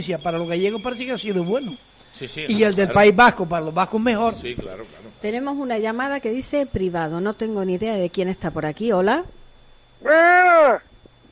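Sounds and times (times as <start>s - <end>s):
speech: 0.0s - 9.4s, 10.0s - 10.9s
goat bleating: 10.0s - 10.8s.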